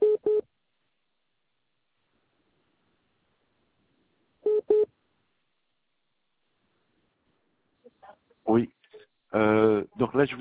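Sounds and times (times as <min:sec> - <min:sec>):
short electronic phone beeps signalling an incoming service call: 0:04.5 - 0:04.9
speech: 0:08.4 - 0:10.4.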